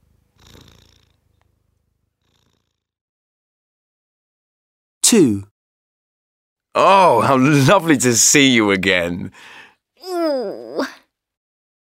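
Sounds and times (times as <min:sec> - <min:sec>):
cat purring: 0:00.0 - 0:03.0
speech: 0:05.1 - 0:05.5, 0:06.8 - 0:10.9.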